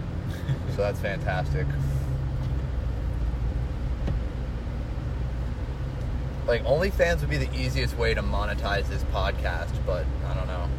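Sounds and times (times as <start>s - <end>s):
car engine and road noise while driving through a blizzard: 0.0s - 10.7s
speech: 0.8s - 2.0s, 6.5s - 10.7s.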